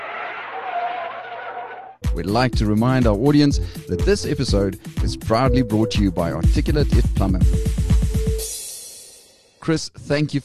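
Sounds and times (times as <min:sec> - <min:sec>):
car brakes screeching as car skids to a halt: 0:00.0 - 0:02.0
speech: 0:02.1 - 0:07.8, 0:09.6 - 0:10.4.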